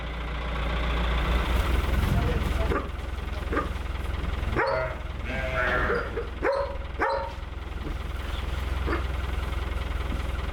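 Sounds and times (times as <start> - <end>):
low engine idling: 0.0 - 10.5
dry hay crunching and rustling as it is spread out: 1.0 - 10.5
animal calls: 2.7 - 7.4, 8.2 - 9.2.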